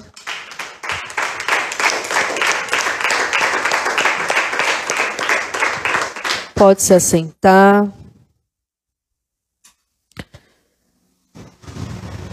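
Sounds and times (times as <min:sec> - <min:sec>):
crowd applauding: 0:00.0 - 0:06.6
speech: 0:06.6 - 0:08.0.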